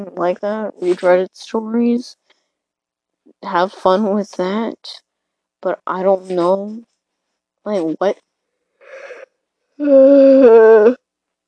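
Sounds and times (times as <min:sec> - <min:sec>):
speech: 0:00.0 - 0:02.2, 0:03.4 - 0:05.0, 0:05.6 - 0:06.9, 0:07.6 - 0:08.3, 0:09.8 - 0:11.0
person yawning: 0:08.8 - 0:09.2.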